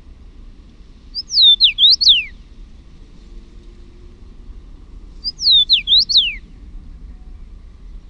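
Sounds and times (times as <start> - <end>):
common rosefinch whistled song: 1.1 - 2.4, 5.2 - 7.5.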